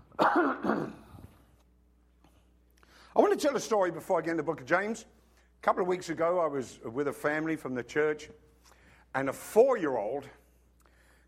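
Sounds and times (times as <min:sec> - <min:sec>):
harsh cough: 0:00.1 - 0:01.3
rough throat clearing: 0:00.2 - 0:01.3
speech: 0:03.4 - 0:08.5, 0:09.1 - 0:10.4.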